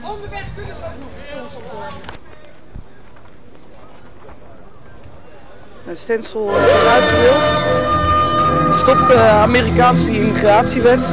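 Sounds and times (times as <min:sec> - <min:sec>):
crowd voices: 0:00.0 - 0:11.1
outdoor bustle: 0:00.0 - 0:11.1
speech: 0:00.1 - 0:02.2, 0:05.8 - 0:11.1
horse-drawn carriage hooves clip-clopping: 0:00.3 - 0:06.4.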